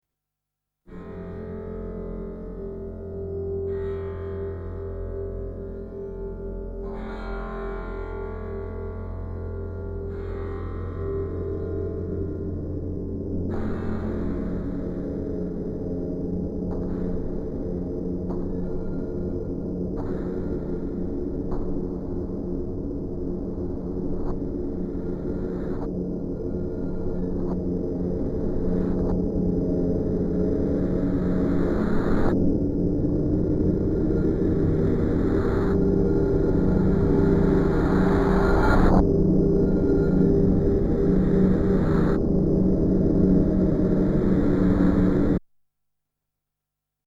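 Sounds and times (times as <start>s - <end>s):
wide ambient tone: 0.9s - 45.4s.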